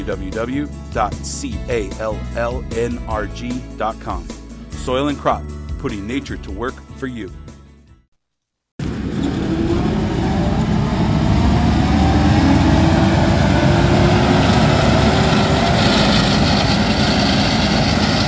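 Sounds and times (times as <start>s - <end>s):
speech: 0.0s - 7.4s
tractor-towed multi-purpose orchard mower engine drone behind a small 80-horsepower tractor: 8.8s - 18.2s
walnut-blowing mower blowing roar: 8.8s - 18.2s.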